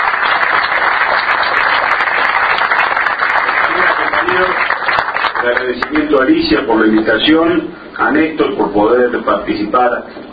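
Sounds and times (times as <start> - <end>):
audience applause at a public ceremony in Buenos Aires province: 0.0 - 6.4
speech: 5.4 - 10.2.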